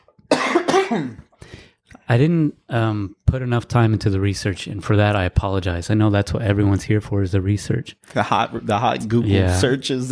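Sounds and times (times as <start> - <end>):
rough cough: 0.3 - 1.4
speech: 0.8 - 1.5, 2.1 - 10.0
faint breath: 1.3 - 1.8.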